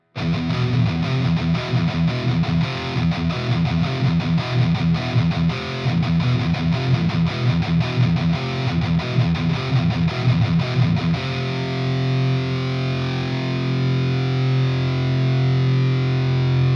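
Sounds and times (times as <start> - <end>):
electric guitar through EL84 valve amplifier: 0.0 - 16.7.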